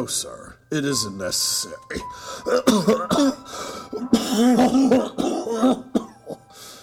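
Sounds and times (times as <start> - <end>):
speech: 0.0 - 5.9
harsh prolonged coughing fit: 2.7 - 3.4, 4.0 - 6.4.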